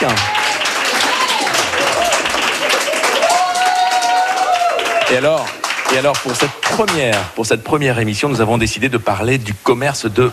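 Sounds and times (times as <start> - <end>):
speech: 0.0 - 0.3, 5.1 - 10.3
people cheering and whooping: 0.0 - 5.4
live audience applauding: 0.0 - 7.4.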